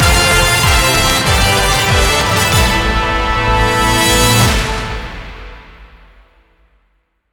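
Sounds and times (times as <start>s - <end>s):
epic win ending jingle: 0.0s - 5.5s.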